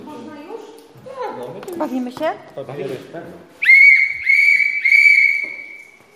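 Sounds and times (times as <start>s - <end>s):
speech: 1.8s - 3.7s
shrill whistle blown as an alarm signal: 3.6s - 6.1s.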